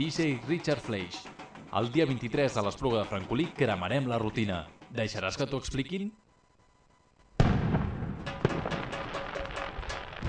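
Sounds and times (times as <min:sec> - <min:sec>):
speech: 0:00.0 - 0:06.2
firecrackers exploding: 0:07.4 - 0:10.2.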